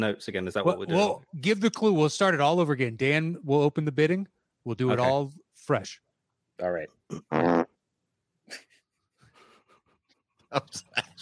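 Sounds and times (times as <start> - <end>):
speech: 0.0 - 6.0, 6.6 - 7.6, 8.5 - 8.7, 10.5 - 11.2
buzzy fart sound effect from a fart machine: 7.1 - 7.8.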